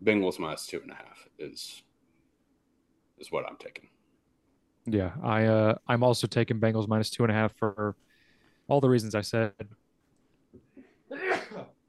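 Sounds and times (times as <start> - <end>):
speech: 0.0 - 1.9, 3.2 - 4.0, 4.8 - 8.1, 8.7 - 9.8
quick breaths: 8.0 - 8.7
sneeze: 11.1 - 11.7.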